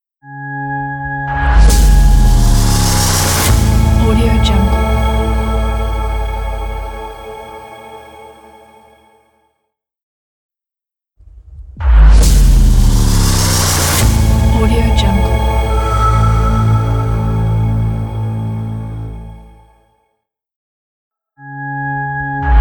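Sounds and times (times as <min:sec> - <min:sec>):
electronic riser logo: 0:00.9 - 0:07.5, 0:12.2 - 0:19.2.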